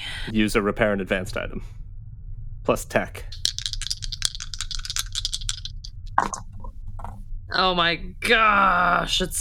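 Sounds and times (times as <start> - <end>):
speech: 0.2 - 1.8, 2.6 - 3.4, 6.2 - 6.5, 7.5 - 9.4
dice rattling: 3.3 - 7.2.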